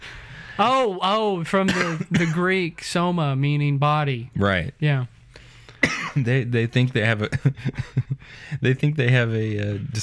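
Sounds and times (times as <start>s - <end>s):
speech: 0.6s - 5.1s, 6.2s - 10.0s
person coughing: 1.7s - 2.5s, 5.8s - 6.2s.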